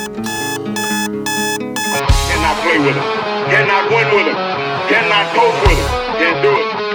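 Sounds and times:
alarm clock beeping: 0.0s - 2.1s
speech: 2.8s - 6.8s.

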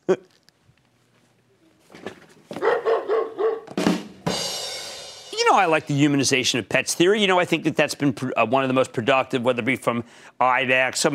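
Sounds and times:
dog barking: 2.6s - 3.7s
speech: 5.6s - 11.1s.

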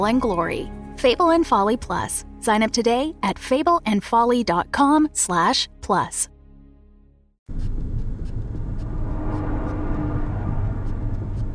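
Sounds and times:
speech: 0.0s - 6.3s
car engine starting and running: 7.5s - 11.5s.

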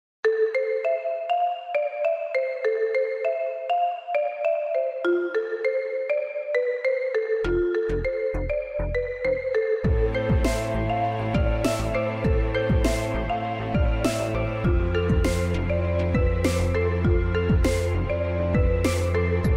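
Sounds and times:
phone melodic ringtone: 0.3s - 19.5s
deep thumping beats: 9.9s - 19.5s.

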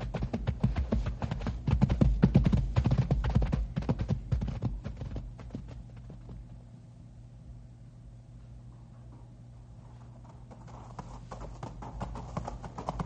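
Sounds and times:
horse hooves clip-clopping on a trail of loose rock: 0.0s - 6.6s, 10.2s - 13.0s.

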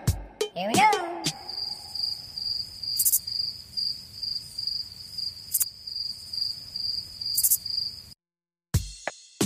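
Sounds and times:
speech: 0.6s - 0.8s
crickets chirping: 1.3s - 8.2s.

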